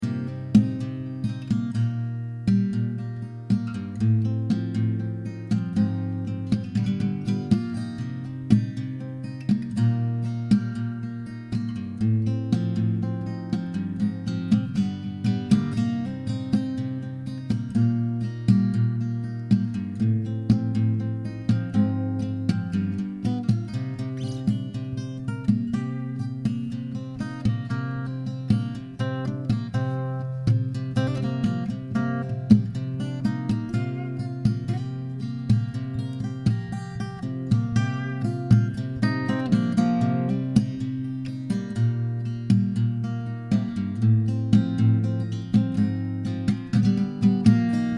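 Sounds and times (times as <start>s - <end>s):
acoustic doodle in C minor at 120 BPM: 0.0s - 47.9s.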